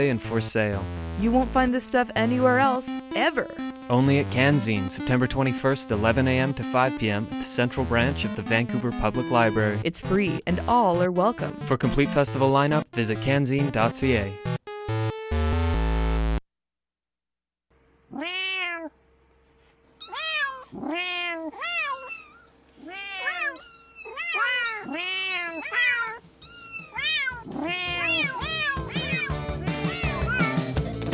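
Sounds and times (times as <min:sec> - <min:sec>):
speech: 0:00.0 - 0:14.5
music: 0:00.0 - 0:16.4, 0:26.2 - 0:31.1
cat meowing: 0:18.1 - 0:19.0, 0:20.0 - 0:30.8.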